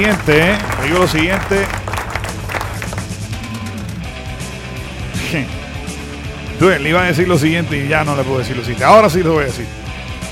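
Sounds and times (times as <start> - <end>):
speech: 0.0 - 1.8, 5.3 - 5.6, 6.6 - 9.8
small group clapping in a studio: 0.0 - 3.6.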